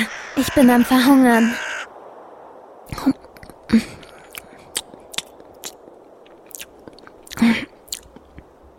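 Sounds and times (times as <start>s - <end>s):
speech: 0.4s - 1.6s, 3.0s - 4.0s
chewing on a dry piece of bread: 4.1s - 8.4s.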